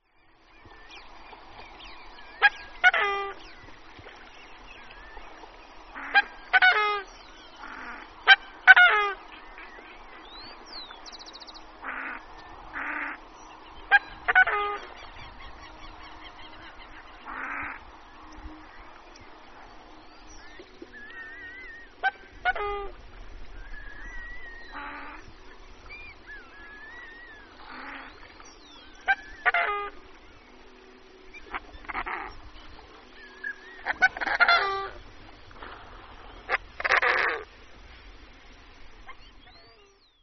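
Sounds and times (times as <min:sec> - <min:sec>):
coscoroba swan calling: 0:02.4 - 0:04.1, 0:04.8 - 0:09.9, 0:11.8 - 0:13.2, 0:13.9 - 0:17.8, 0:20.5 - 0:30.6, 0:31.3 - 0:37.5.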